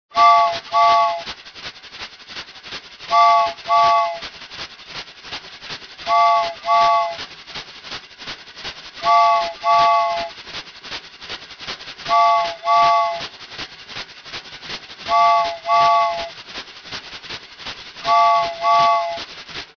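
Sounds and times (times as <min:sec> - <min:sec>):
cartoon train whistle: 0:00.1 - 0:01.3, 0:03.1 - 0:04.3, 0:06.0 - 0:07.3, 0:09.0 - 0:10.4, 0:12.1 - 0:13.3, 0:15.1 - 0:16.4, 0:18.0 - 0:19.3.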